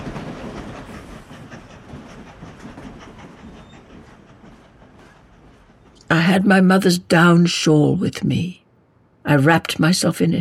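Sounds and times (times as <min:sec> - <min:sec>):
train wheels clattering along rails: 0:00.0 - 0:07.4
speech: 0:06.3 - 0:08.6, 0:09.3 - 0:10.3.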